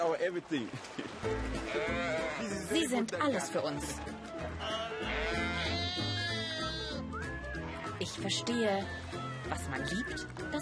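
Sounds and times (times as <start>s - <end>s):
speech: 0.0s - 5.8s, 8.0s - 10.5s
sea water splashing as sheep are washed in Atlantic waves: 0.0s - 10.5s
sheep bleating during washing in Atlantic sea waves in Senegal: 1.6s - 2.9s, 4.6s - 7.0s.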